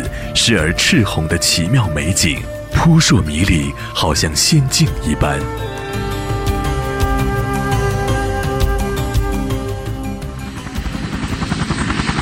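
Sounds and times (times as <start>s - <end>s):
speech: 0.4s - 6.1s
helicopter engine whining in the Grand Canyon: 3.9s - 12.2s
helicopter rotor spinning before takeoff in the Grand Canyon: 6.0s - 12.2s.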